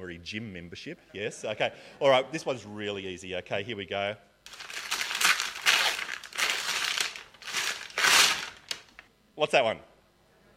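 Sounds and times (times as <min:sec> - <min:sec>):
speech: 0:00.1 - 0:04.7, 0:09.4 - 0:09.9
wrapping paper on presents being torn and crumpled: 0:04.5 - 0:09.0.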